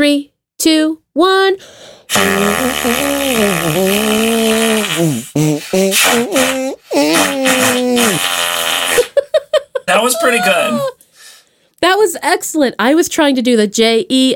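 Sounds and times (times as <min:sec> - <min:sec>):
speech: 0:00.0 - 0:08.5, 0:09.5 - 0:11.0, 0:11.8 - 0:14.3
musical arm farts made by blowing on a sweater-covered arm: 0:02.1 - 0:09.2
laughter: 0:09.0 - 0:10.9.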